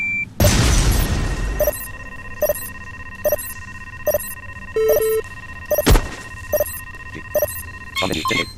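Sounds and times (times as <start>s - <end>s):
C4 explosives detonating in a video game: 0.4s - 1.7s
short electronic menu beeps in a video game: 0.4s - 8.5s.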